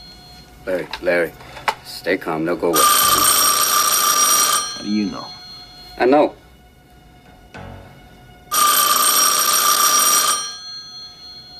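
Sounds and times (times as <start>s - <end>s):
telephone bell ringing in a metallic burst: 0.0s - 0.8s, 2.8s - 6.3s, 8.5s - 11.5s
speech: 0.6s - 3.2s, 4.8s - 5.4s, 6.0s - 6.4s.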